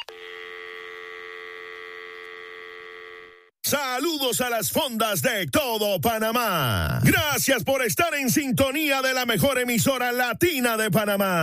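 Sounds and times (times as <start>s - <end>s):
steady telephone tone when a call is placed: 0.0s - 3.5s
speech: 3.7s - 11.4s.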